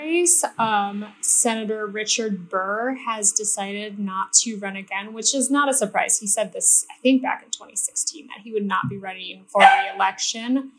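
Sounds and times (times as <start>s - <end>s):
speech: 0.2s - 10.7s
dog barking and yipping: 9.6s - 10.0s.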